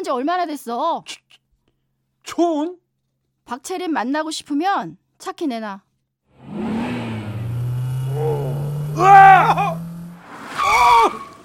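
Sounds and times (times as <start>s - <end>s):
speech: 0.0s - 1.2s, 2.3s - 2.8s, 3.5s - 5.9s, 9.0s - 9.8s
car engine revving and accelerating as a woman drives: 6.4s - 10.4s.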